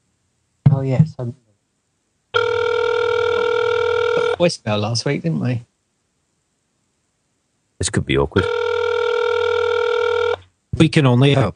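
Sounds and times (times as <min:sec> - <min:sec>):
speech: 0:00.8 - 0:01.5, 0:04.4 - 0:05.7, 0:07.8 - 0:08.6, 0:10.8 - 0:11.5
telephone ringing tone on an outgoing call: 0:02.4 - 0:04.4, 0:08.4 - 0:10.5.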